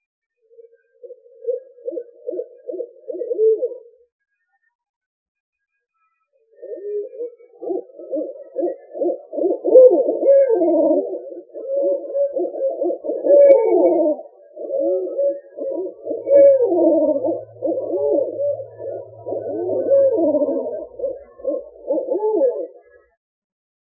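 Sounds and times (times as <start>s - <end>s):
owl hooting in low pulsed trills: 1.0s - 3.9s, 6.6s - 23.0s.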